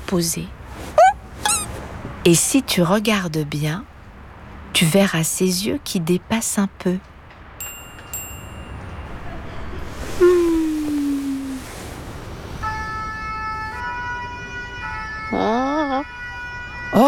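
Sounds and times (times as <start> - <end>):
noise: 0.0 - 17.0
speech: 0.1 - 1.0, 2.3 - 3.9, 4.7 - 7.1
fire engine siren in the street: 12.6 - 17.0.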